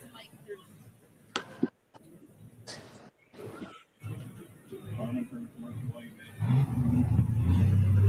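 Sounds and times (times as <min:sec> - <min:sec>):
heavy pulling-tractor engine revving on test pass: 0:06.4 - 0:08.0.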